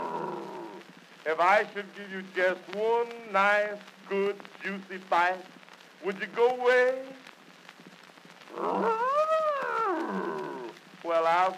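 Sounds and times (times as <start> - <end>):
bear roaring: 0.0 - 0.8, 8.5 - 10.7
speech: 1.3 - 7.3, 8.6 - 9.0, 11.1 - 11.5.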